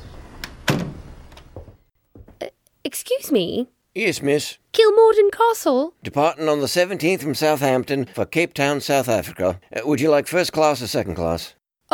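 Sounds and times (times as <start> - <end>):
shop door opening with a light click, a solid thunk and a brief rattle: 0.0 - 1.9
speech: 2.9 - 11.9.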